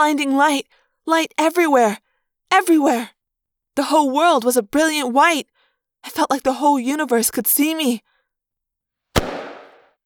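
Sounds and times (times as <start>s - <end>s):
speech: 0.0s - 3.2s, 3.8s - 8.1s
sharp loud cracking explosion with decay: 9.2s - 9.9s.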